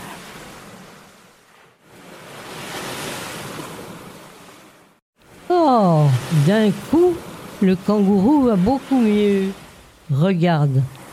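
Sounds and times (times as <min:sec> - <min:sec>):
ocean surf washing onto the shore: 0:00.0 - 0:11.1
speech: 0:05.7 - 0:11.0.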